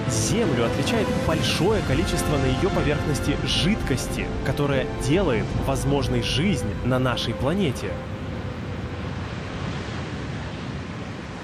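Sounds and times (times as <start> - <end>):
ocean waves and surf roaring: 0.0 - 11.4
wind: 0.0 - 11.4
speech: 0.1 - 8.2.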